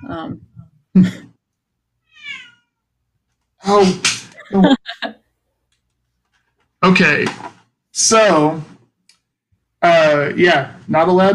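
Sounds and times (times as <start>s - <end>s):
speech: 0.1s - 1.3s, 3.6s - 5.2s, 6.8s - 8.7s, 9.8s - 11.3s
house cat screaming in harsh yowls: 2.0s - 2.8s.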